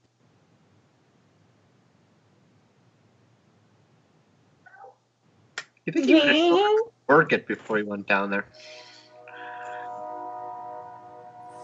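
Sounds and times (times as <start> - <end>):
speech: 5.8 - 8.8
train horn blast: 8.5 - 11.6.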